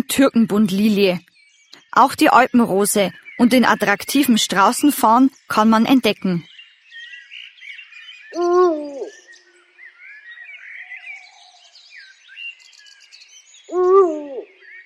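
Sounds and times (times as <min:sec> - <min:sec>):
chorus of smaller birds chirping and trilling: 0:00.0 - 0:14.8
speech: 0:00.1 - 0:01.3, 0:01.9 - 0:06.5
eagle owl hooting in rock formations of the Waldenabtal nature reserve: 0:08.3 - 0:09.2, 0:13.7 - 0:14.6.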